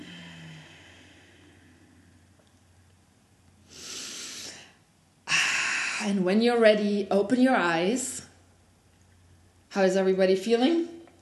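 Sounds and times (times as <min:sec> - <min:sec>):
deep exhale at the close of a guided breathing exercise: 0:00.0 - 0:02.4, 0:03.6 - 0:06.1
speech: 0:06.0 - 0:08.2, 0:09.8 - 0:11.0.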